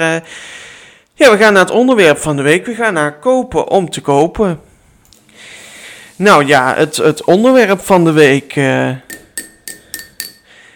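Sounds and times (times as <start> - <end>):
speech: 0.0 - 0.6, 1.2 - 4.7, 6.2 - 9.2
taps on a ridged drinking glass: 9.1 - 10.5.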